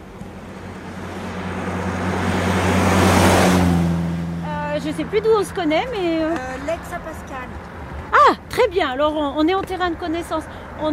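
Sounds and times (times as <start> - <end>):
car engines rumbling in a parking lot: 0.0 - 10.9
speech: 5.0 - 7.3, 8.6 - 10.9.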